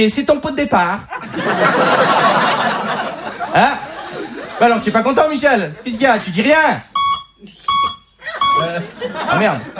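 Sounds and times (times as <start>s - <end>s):
speech: 0.0s - 3.9s, 4.6s - 7.8s, 8.6s - 9.7s
laughter: 1.1s - 6.6s, 8.2s - 9.7s
electronic beep: 6.9s - 8.7s.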